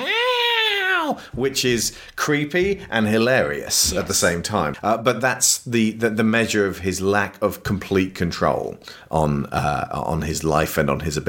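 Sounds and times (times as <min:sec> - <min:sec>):
man's voice imitating a whiny cat meow: 0:00.0 - 0:01.2
speech: 0:01.2 - 0:11.2.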